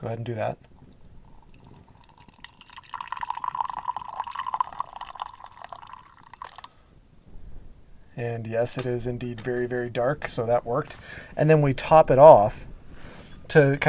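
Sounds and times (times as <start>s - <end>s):
speech: 0.0s - 0.7s, 8.2s - 12.7s, 13.5s - 13.8s
tea poured from teapot into teacup: 0.8s - 6.7s.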